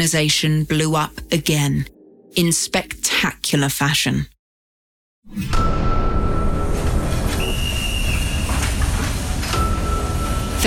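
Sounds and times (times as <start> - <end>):
speech: 0.0 - 4.3, 5.2 - 5.8
freight train rolling out of a station with a heavy rumble: 6.4 - 10.6.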